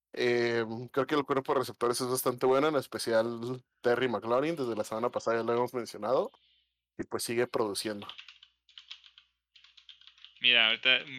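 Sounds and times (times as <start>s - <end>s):
speech: 0.2s - 8.3s, 10.4s - 11.1s
clicky keystrokes on a mechanical keyboard: 7.9s - 10.4s.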